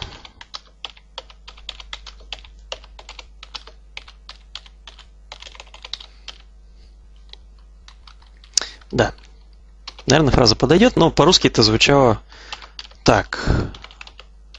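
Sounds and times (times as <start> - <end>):
typing a phrase on a computer keyboard: 0.0 - 6.5, 7.2 - 10.3, 12.5 - 13.1, 13.7 - 14.5
steady low electrical hum: 0.0 - 14.5
speech: 8.9 - 9.2, 10.1 - 13.8.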